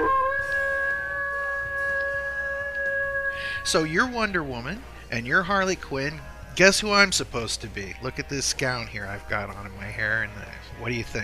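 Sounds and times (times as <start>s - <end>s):
wolf howling: 0.0s - 4.5s
speech: 3.6s - 11.2s.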